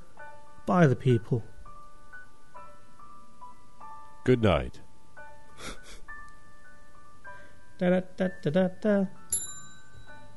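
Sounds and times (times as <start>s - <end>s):
speech: 0.7s - 1.5s, 4.2s - 4.8s, 5.6s - 5.8s, 7.8s - 9.2s
single bright bell strike: 9.3s - 10.3s.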